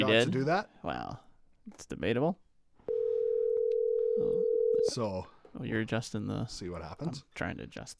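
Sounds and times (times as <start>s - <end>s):
speech: 0.0s - 2.4s, 4.2s - 7.9s
electronic ringback tone of an outgoing phone call: 2.9s - 4.9s.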